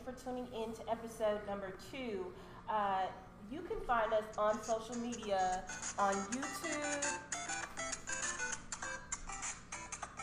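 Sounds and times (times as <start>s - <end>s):
speech: 0.1s - 7.3s
mobile phone ringing with a bright melodic ringtone: 5.2s - 10.2s.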